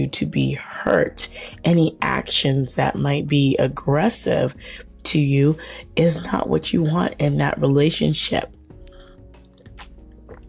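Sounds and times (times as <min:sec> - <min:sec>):
speech: 0:00.0 - 0:08.6
person sipping tea: 0:08.8 - 0:10.4
swallowing: 0:08.8 - 0:10.4.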